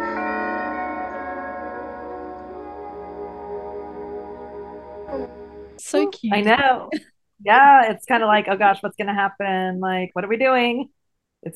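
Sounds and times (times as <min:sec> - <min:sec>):
doorbell chime ringing: 0:00.0 - 0:03.4
speech: 0:05.8 - 0:11.5.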